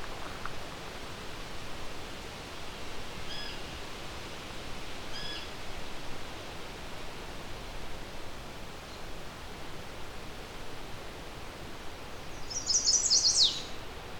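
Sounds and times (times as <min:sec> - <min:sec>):
steady hiss of wind-like noise: 0:00.0 - 0:14.1
chestnut-sided warbler song: 0:12.2 - 0:14.0.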